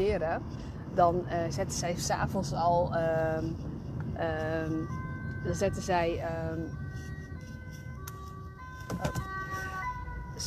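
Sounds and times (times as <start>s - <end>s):
speech: 0.0s - 6.8s
moving car engine and road rumble: 0.0s - 10.4s
ambulance emergency siren wailing: 4.1s - 10.4s.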